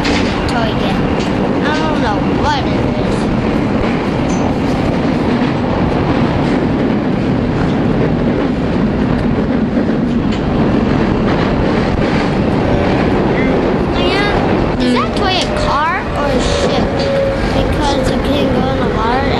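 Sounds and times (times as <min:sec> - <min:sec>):
train rolling along the rails with clickety-clack: 0:00.0 - 0:19.3.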